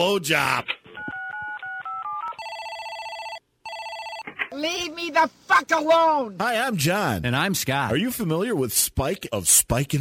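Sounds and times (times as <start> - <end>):
speech: 0.0 - 0.8, 4.5 - 9.9
telephone keypad dual-tone presses: 1.0 - 4.3.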